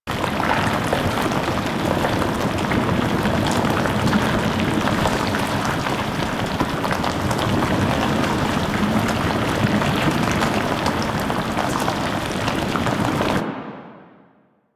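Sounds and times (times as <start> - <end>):
coolant flowing: 0.1 - 13.4.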